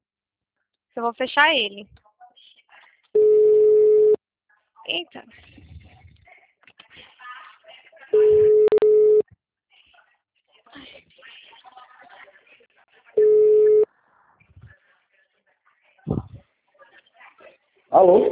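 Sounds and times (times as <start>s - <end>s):
speech: 1.0s - 2.0s, 4.9s - 5.6s, 17.9s - 18.3s
telephone busy tone after a dropped call: 3.2s - 4.2s, 8.2s - 9.2s, 13.2s - 13.8s.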